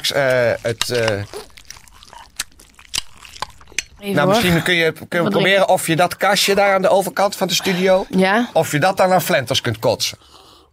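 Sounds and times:
person eating stinking meat mush with wet chewing and smacking: 0.0 - 4.7
speech: 0.1 - 1.4, 4.0 - 10.4
crunchy clicks: 0.6 - 4.0.

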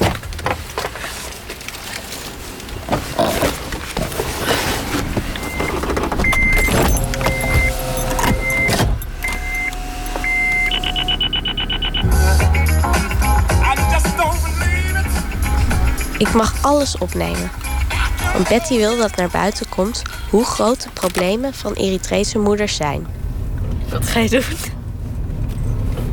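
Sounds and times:
car engine drone: 0.0 - 26.1
road noise inside a moving car: 0.0 - 26.1
louder low rumbling inside a moving car: 2.3 - 24.1
short repeated electronic beeps: 5.4 - 13.0
speech: 16.4 - 17.6, 18.4 - 23.2, 23.9 - 24.8.

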